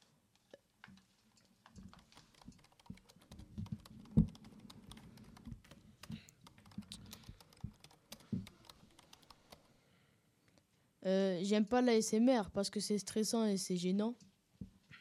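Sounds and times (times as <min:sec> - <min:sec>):
clacking of keys on a computer keyboard: 0:01.5 - 0:09.8
speech: 0:11.1 - 0:14.3.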